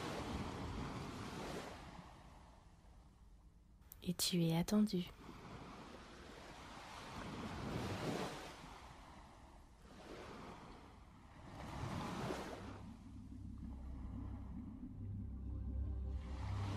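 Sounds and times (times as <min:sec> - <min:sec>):
ocean waves washing onto a beach: 0:00.0 - 0:03.4, 0:04.0 - 0:16.7
speech: 0:04.0 - 0:05.2
low sustained tone: 0:12.5 - 0:16.7.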